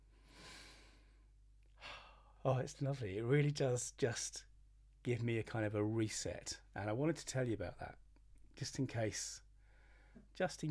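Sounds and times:
person breathing in through nose and out through mouth: 0.0s - 2.4s, 9.6s - 10.3s
speech: 2.4s - 8.0s, 8.6s - 9.4s, 10.2s - 10.6s.

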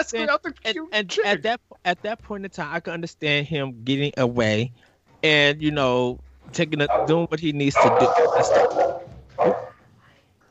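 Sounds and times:
speech: 0.0s - 9.7s
dog barking: 6.8s - 9.8s
dog whining: 6.9s - 7.2s, 7.8s - 9.8s.

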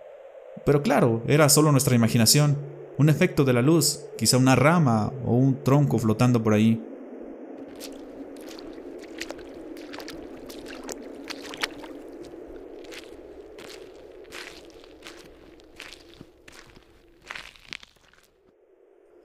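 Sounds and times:
speech: 0.6s - 6.9s
constant low watery rumble: 6.8s - 19.2s
wet squelching footsteps treading out of shallow water: 7.6s - 18.5s.

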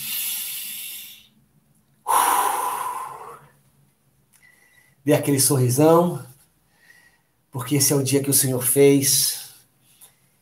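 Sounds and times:
deep breath: 0.0s - 1.4s, 2.0s - 3.6s, 4.4s - 5.0s, 6.6s - 7.4s
speech: 5.0s - 6.3s, 7.6s - 9.4s.

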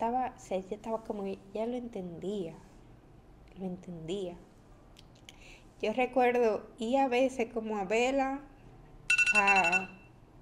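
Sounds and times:
speech: 0.0s - 2.7s, 3.6s - 4.5s, 5.8s - 8.5s, 9.3s - 10.0s
phone alarm with bright electronic pulses: 9.1s - 10.2s.

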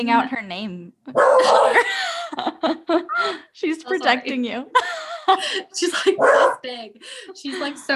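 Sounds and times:
speech: 0.0s - 7.9s
laughter: 1.1s - 6.3s
small female guard dog barking at people walking in the hall: 1.2s - 1.8s, 6.2s - 6.6s.

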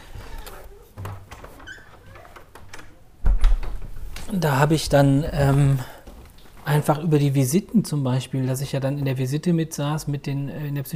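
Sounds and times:
door creaking softly: 0.0s - 6.9s
faint shuffling: 0.0s - 8.9s
door pulled shut with a low dull thud: 0.2s - 4.3s
speech: 4.3s - 5.9s, 6.7s - 10.9s.

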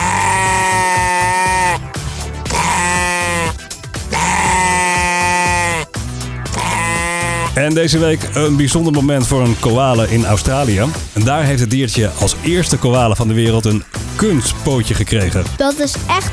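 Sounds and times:
sheep bleating: 0.0s - 1.8s, 2.5s - 5.9s, 6.5s - 7.6s
speech: 7.6s - 16.3s.

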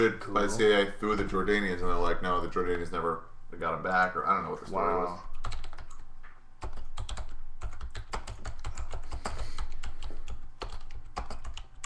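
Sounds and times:
speech: 0.0s - 5.3s
typing on a computer keyboard: 5.3s - 6.0s, 6.6s - 11.8s.

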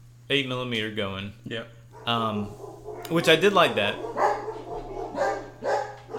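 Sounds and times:
steady low electrical hum: 0.0s - 6.1s
speech: 0.3s - 4.3s
dog barking: 2.0s - 6.1s.

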